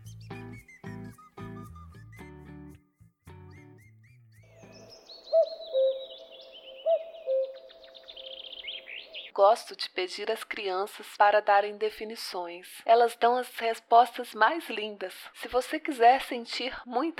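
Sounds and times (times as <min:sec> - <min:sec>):
cuckoo calls: 0:00.0 - 0:02.3, 0:03.5 - 0:09.4
short musical passage: 0:00.0 - 0:04.9
faint high twittering: 0:03.8 - 0:09.3
speech: 0:09.4 - 0:17.1.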